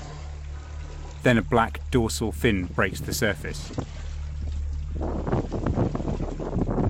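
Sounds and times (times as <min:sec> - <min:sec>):
splashing and rushing choppy water off a sailboat: 0:00.0 - 0:06.8
speech: 0:01.2 - 0:04.0
wind buffeting the microphone on a sailboat: 0:02.7 - 0:06.8.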